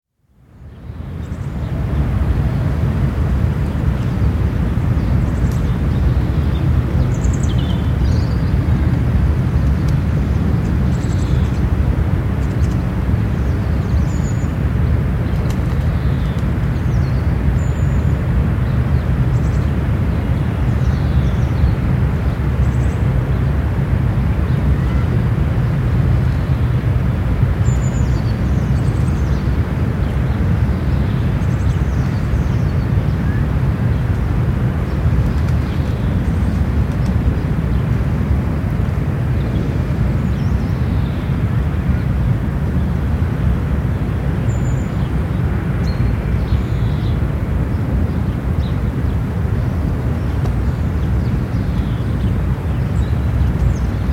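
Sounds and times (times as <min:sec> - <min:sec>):
distant heavy traffic: 0:00.4 - 0:54.1
birds in a park on a spring afternoon: 0:00.7 - 0:54.1.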